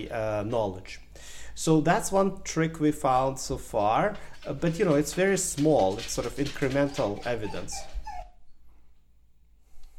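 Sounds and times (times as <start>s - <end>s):
speech: 0.0s - 7.9s
dog whimpering for attention: 6.4s - 8.6s.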